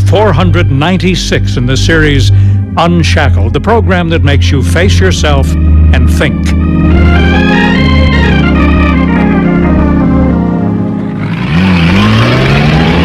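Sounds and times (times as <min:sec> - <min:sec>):
speech: 0:00.1 - 0:07.4
two truck engines revving and roaring while racing on a hilly road: 0:06.4 - 0:13.0.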